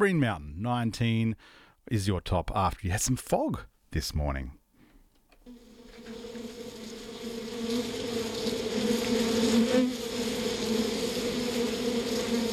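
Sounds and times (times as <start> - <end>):
speech: 0.0 - 4.6
bees buzzing: 5.5 - 12.5.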